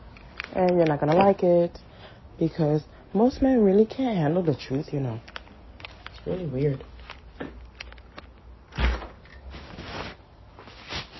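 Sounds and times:
speech: 0.5s - 5.3s, 6.2s - 7.6s
door pushed shut with a solid thud: 8.8s - 9.2s.

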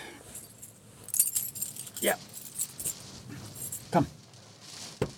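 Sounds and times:
keys jingling: 0.2s - 3.9s
faint shuffling movement: 0.2s - 5.0s
speech: 2.0s - 2.3s, 4.0s - 4.2s.

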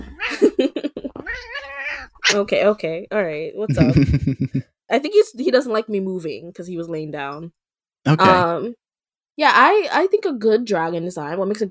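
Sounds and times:
cat meowing: 1.2s - 2.4s
speech: 2.3s - 8.8s, 9.4s - 11.6s
laughter: 3.7s - 4.6s, 8.1s - 8.4s.

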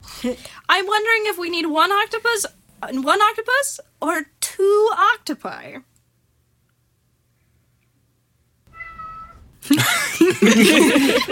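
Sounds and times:
speech: 0.2s - 5.9s, 9.6s - 11.3s
cat meowing and yowling: 8.7s - 9.5s
laughter: 9.6s - 11.3s.

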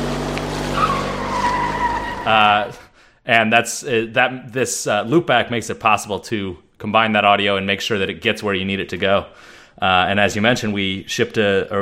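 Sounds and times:
car tires squealing as it pulls away: 0.0s - 2.9s
speech: 2.3s - 11.8s.

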